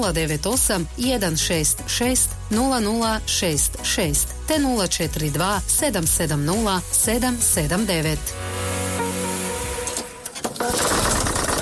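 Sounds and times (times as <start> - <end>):
speech: 0.0 - 8.5
tractor engine stalling mid-work: 9.6 - 11.6.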